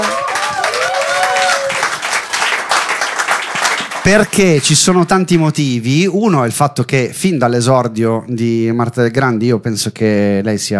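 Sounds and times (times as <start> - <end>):
audience applauding with dense steady clapping: 0.0 - 5.1
speech: 4.1 - 10.7.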